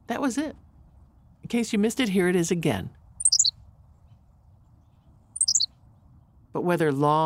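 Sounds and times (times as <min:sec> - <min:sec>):
speech: 0:00.1 - 0:00.6, 0:01.4 - 0:03.0, 0:06.6 - 0:07.2
Henslow's sparrow song: 0:03.1 - 0:06.2.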